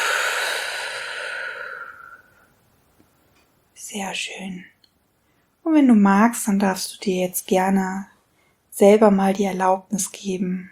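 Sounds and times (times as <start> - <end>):
group exhaling during a guided relaxation breathing exercise: 0.0 - 2.4
speech: 3.9 - 4.8, 5.6 - 8.1, 8.8 - 10.7.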